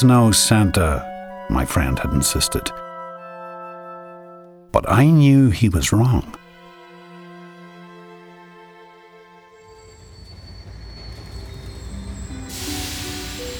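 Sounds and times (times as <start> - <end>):
speech: 0.0 - 2.9, 4.7 - 6.4
rumbling train clatter: 9.8 - 13.5
loud burst of hissing steam: 9.9 - 13.5.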